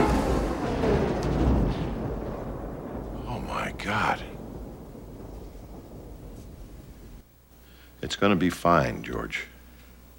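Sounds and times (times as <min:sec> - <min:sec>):
heavy rain: 0:00.0 - 0:07.3
speech: 0:08.1 - 0:09.5.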